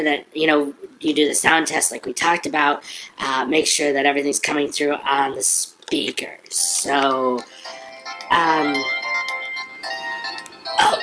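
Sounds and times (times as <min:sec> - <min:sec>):
speech: 0:00.0 - 0:09.0
mobile phone ringtone: 0:07.4 - 0:11.0.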